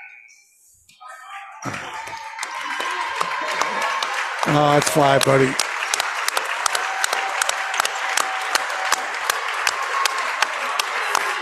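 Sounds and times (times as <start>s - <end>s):
speech: 1.6s - 2.2s, 4.4s - 5.6s
basketball game crowd applauding a player leaving: 1.6s - 11.3s.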